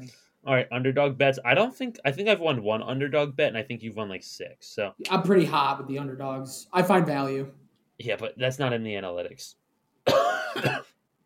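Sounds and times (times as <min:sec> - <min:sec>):
speech: 0:00.1 - 0:10.9
harsh raspy smoker's cough: 0:10.1 - 0:11.0.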